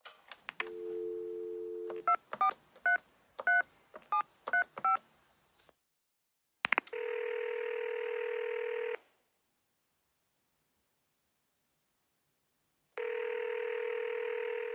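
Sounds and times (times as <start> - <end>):
telephone dial tone: 0.7 - 2.0, 7.0 - 9.0, 13.0 - 14.7
touch-tone telephone keypad beeps: 1.8 - 5.0.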